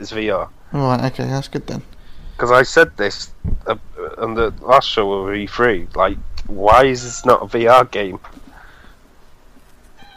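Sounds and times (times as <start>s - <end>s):
speech: 0.0s - 8.4s
cat meowing with strained rising cries: 6.9s - 7.5s, 10.0s - 10.1s.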